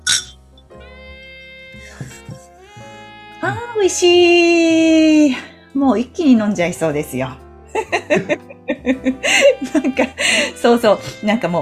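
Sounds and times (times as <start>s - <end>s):
glasses clinking in a toast: 0.0s - 0.4s
sustained tonal background: 0.0s - 11.5s
laughter: 1.8s - 2.4s, 7.8s - 10.6s
speech: 3.4s - 7.4s, 8.1s - 11.5s.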